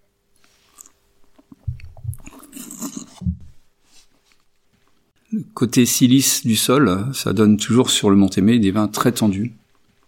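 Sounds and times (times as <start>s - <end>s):
wet mouth sounds of tasting a blend of two wines: 0.4s - 3.4s
speech: 5.6s - 9.6s.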